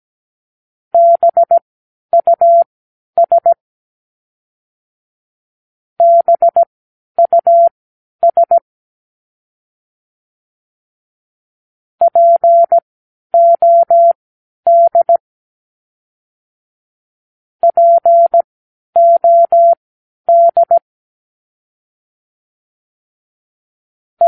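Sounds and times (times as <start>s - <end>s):
morse code practice words: 1.0s - 1.6s, 2.2s - 3.6s, 6.0s - 8.6s, 12.1s - 12.8s, 13.4s - 15.2s, 17.6s - 18.4s, 19.0s - 20.8s.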